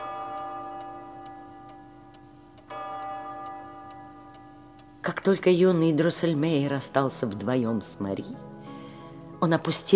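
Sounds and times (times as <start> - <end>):
clock ticking: 0.0 - 7.6
speech: 5.0 - 8.5, 9.4 - 9.9.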